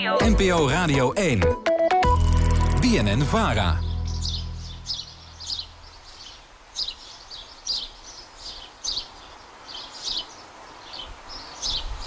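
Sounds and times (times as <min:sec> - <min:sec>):
speech: 0:00.2 - 0:01.7, 0:02.8 - 0:03.8
sparrows chirping in a large holly bush: 0:02.8 - 0:12.0.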